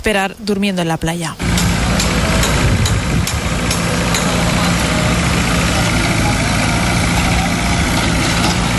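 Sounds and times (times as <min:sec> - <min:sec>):
speech: 0:00.0 - 0:01.5
sharp metal clanks: 0:01.4 - 0:04.7
heavy construction machinery idling at port building works: 0:01.4 - 0:08.7.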